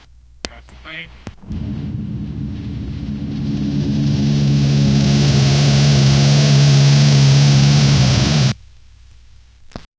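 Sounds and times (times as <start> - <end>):
crash: 1.4 - 8.6
deep engine revving on gravel: 1.4 - 8.6.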